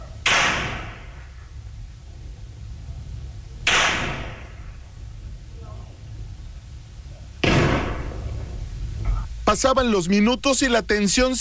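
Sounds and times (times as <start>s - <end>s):
steady low rumble of noise: 0.0s - 11.4s
gunshots from firearms in armed confrontation in Nuevo León: 0.3s - 1.3s, 3.7s - 4.9s, 7.4s - 11.4s
speech: 9.5s - 11.4s.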